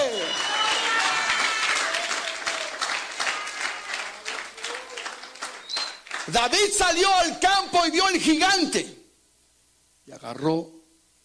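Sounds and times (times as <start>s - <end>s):
crowd applauding: 0.0s - 7.1s
speech: 6.3s - 9.0s, 10.2s - 10.8s.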